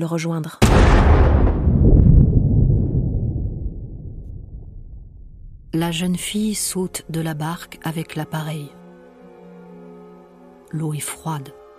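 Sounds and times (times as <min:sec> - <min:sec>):
speech: 0:00.0 - 0:01.5, 0:05.7 - 0:08.8, 0:10.7 - 0:11.6
bomb explosion: 0:00.6 - 0:05.8.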